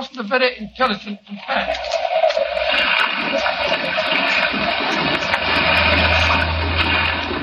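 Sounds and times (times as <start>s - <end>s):
speech: 0.2s - 2.0s, 2.8s - 5.2s
rough sea water sloshing around a small fishing boat: 0.6s - 7.4s
low rumble: 3.4s - 7.4s.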